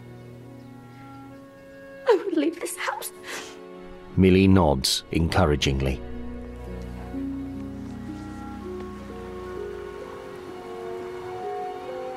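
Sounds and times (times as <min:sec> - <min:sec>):
sustained musical tones: 0:00.0 - 0:12.1
speech: 0:02.2 - 0:03.6, 0:04.2 - 0:06.1
steady rain falling on hills: 0:06.4 - 0:12.1.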